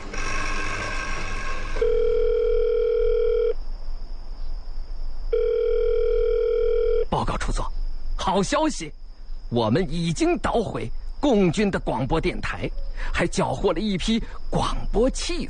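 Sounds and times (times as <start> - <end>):
harsh buzzy telephone line signal while connecting a call to headquarters: 0.2 - 3.6, 5.3 - 7.2
speech: 8.3 - 15.4.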